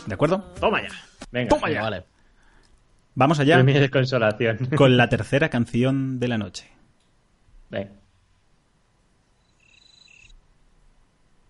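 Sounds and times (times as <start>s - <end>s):
low hiss: 0.0s - 11.4s
speech: 0.1s - 2.1s, 3.2s - 6.8s, 7.7s - 8.0s
cricket chirping: 9.4s - 10.4s.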